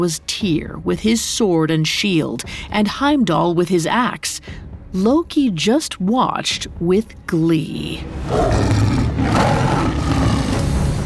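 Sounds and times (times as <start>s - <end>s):
speech: 0.0s - 9.6s
giant saber-toothed tiger roaring: 8.2s - 11.0s.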